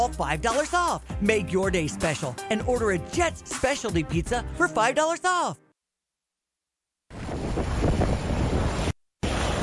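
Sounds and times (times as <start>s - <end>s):
speech: 0.0s - 5.6s
strong roaring winter storm wind gusts buffeting the microphone: 7.1s - 9.6s.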